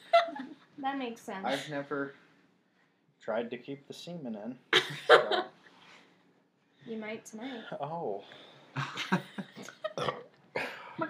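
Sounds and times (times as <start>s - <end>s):
speech: 0.8s - 2.2s, 3.2s - 5.6s, 6.8s - 9.4s
person burping: 9.9s - 10.8s.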